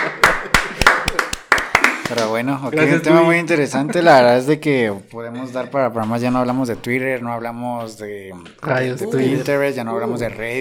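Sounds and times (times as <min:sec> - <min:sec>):
crisp hand claps: 0:00.0 - 0:02.4
speech: 0:02.1 - 0:10.5.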